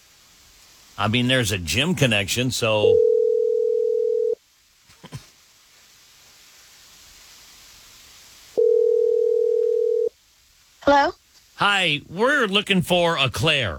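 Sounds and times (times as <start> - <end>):
soft hiss: 0.0 - 13.7
speech: 1.0 - 3.1, 11.8 - 13.7
telephone dial tone while placing a call: 2.9 - 4.4, 8.6 - 10.1.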